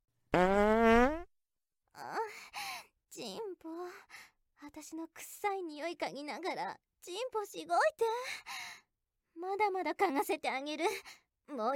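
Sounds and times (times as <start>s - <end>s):
long buzzing fart: 0.3s - 1.3s
speech: 3.2s - 8.5s, 9.4s - 11.7s.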